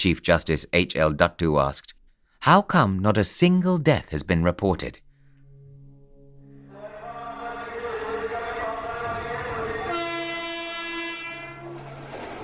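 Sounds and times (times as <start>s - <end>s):
speech: 0.0s - 5.0s
train rumbling past on railway tracks: 6.7s - 12.4s
steady roar of train wheels on the rails: 7.7s - 12.4s.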